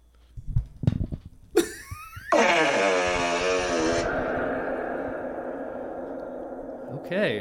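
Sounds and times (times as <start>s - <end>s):
fart with heavy echo: 2.2s - 7.4s
speech: 7.1s - 7.4s.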